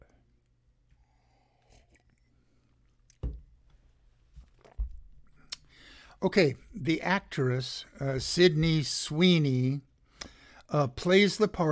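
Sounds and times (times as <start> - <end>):
person sipping and swallowing a drink: 0.8 - 3.2
speech: 6.2 - 9.9, 10.7 - 11.7.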